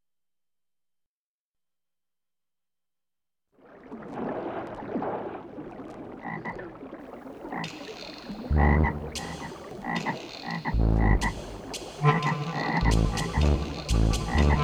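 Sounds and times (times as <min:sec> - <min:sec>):
toad croaking: 0:07.5 - 0:14.6.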